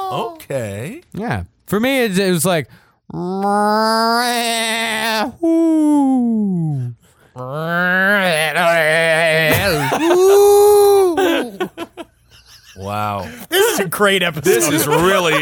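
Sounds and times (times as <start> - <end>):
speech: 0.1 - 10.7, 12.8 - 15.4
person imitating cat-like, bleating and owl-like animal cry: 3.1 - 11.6
laughter: 9.4 - 15.4.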